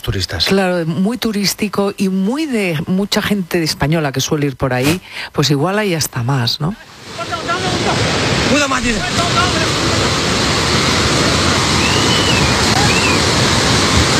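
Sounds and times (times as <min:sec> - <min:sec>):
speech: 0:00.0 - 0:10.0
rushing floodwater roar: 0:06.8 - 0:14.1.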